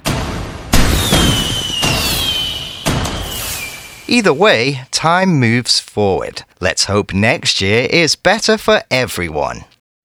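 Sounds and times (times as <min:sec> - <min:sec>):
fireworks exploding: 0:00.6 - 0:04.4
high whistling whine gliding downward: 0:00.8 - 0:04.5
speech: 0:04.1 - 0:09.7.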